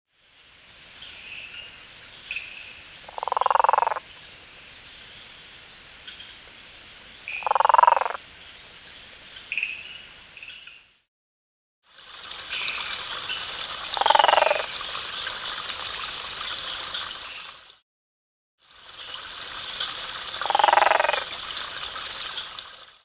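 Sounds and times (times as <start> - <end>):
Mantidactylus guttulatus calling: 2.3 - 4.1, 7.3 - 8.2, 14.0 - 14.7, 20.4 - 21.3.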